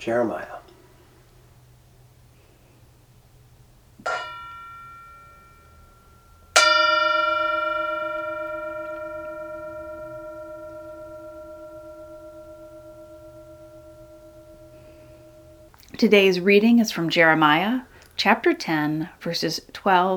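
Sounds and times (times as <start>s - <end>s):
speech: 0.0s - 0.6s, 16.0s - 20.1s
mindfulness bell ringing: 4.0s - 15.7s.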